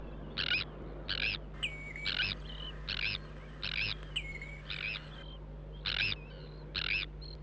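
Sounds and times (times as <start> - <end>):
tern rasping calls: 0.4 - 7.4
steady low hum: 0.8 - 5.8.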